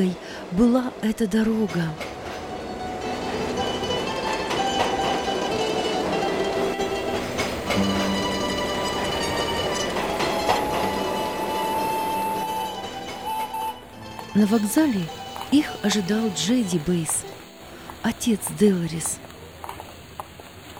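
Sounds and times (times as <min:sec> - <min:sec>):
speech: 0:00.0 - 0:02.1, 0:14.4 - 0:17.3, 0:18.0 - 0:19.3
train rolling along the rails: 0:00.0 - 0:20.7
high metallic train wheel squeals: 0:06.6 - 0:14.0.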